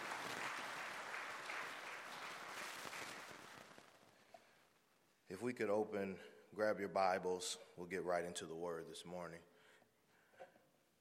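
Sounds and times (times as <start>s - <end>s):
crowd applauding a choir in a large room: 0.0s - 3.8s
speech: 5.3s - 9.5s.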